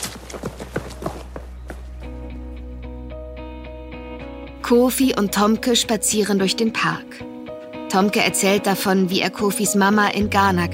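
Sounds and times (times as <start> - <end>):
running footsteps of someone fleeing in panic: 0.0 - 2.6
speech: 4.7 - 7.3, 7.9 - 10.7.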